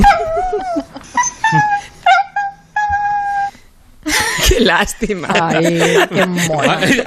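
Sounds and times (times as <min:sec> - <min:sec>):
laughter: 0:00.0 - 0:02.0, 0:04.1 - 0:07.0
small female dog whining and yipping: 0:00.0 - 0:03.6
speech: 0:04.6 - 0:07.0.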